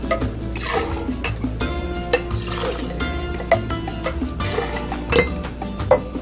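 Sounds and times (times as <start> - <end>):
glass clinking from stirring a coconut rum and triple sec cocktail: 0.1 - 6.2.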